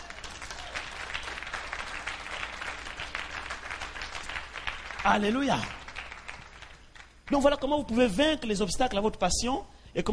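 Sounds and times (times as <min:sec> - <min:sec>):
congregation applauding at a church service: 0:00.0 - 0:07.7
speech: 0:05.0 - 0:05.8, 0:07.3 - 0:10.1.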